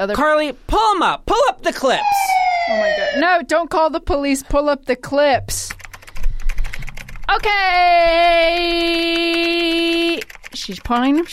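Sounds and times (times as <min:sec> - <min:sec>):
speech: 0:00.0 - 0:05.8, 0:07.3 - 0:11.3
rapid keyboard typing: 0:05.7 - 0:08.1, 0:08.7 - 0:11.3.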